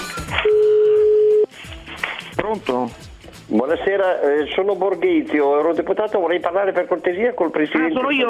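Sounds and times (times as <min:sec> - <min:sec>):
telephone line tone as a call is placed: 0:00.4 - 0:01.5
speech: 0:02.6 - 0:08.2.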